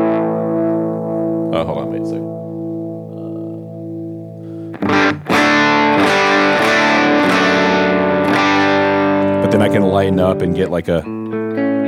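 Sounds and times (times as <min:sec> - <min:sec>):
electric guitar through an RSA 23 amp at the edge of breakup: 0:00.0 - 0:11.8
speech: 0:01.5 - 0:02.4, 0:09.5 - 0:11.2.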